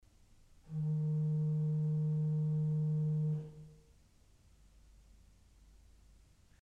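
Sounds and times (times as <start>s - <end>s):
four-foot principal organ pipe sounding D sharp: 0.7s - 3.8s.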